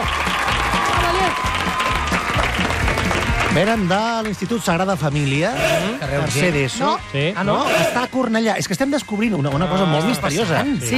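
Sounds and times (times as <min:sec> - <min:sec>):
people cheering: 0:00.0 - 0:04.2
crowd applauding: 0:00.0 - 0:06.2
speech: 0:03.6 - 0:10.9.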